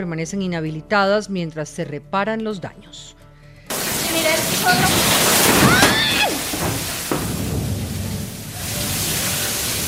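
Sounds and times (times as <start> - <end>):
speech: 0.0 - 3.2, 4.1 - 6.2
floodwater rushing and sloshing inside a flooded judicial complex after a heavy downpour: 3.7 - 9.8.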